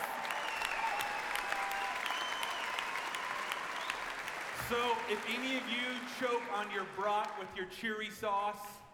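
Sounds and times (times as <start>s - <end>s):
audience applause: 0.0s - 7.5s
whistles from the audience: 0.3s - 4.1s
speech: 4.7s - 8.8s.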